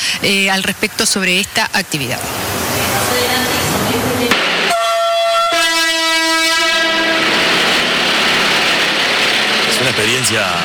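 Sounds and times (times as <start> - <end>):
speech: 0.2 - 2.7, 10.2 - 10.6
passenger train rumbling on rails: 2.3 - 10.6
long blaring passenger train horn: 4.6 - 9.7.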